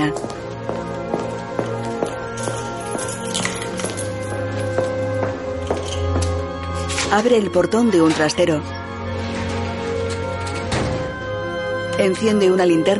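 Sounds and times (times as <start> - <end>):
speech: 0.0 - 0.4, 7.1 - 8.8, 12.0 - 12.9
footsteps of someone walking through a tunnel: 0.0 - 6.4
sustained tonal background: 0.0 - 12.9.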